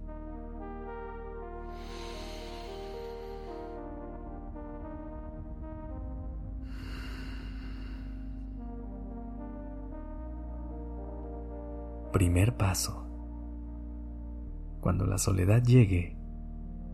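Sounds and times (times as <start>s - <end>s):
sustained low musical drone: 0.0s - 16.9s
deep breathing in and out: 1.6s - 5.1s, 5.7s - 8.9s
speech: 12.1s - 13.0s, 14.9s - 16.2s.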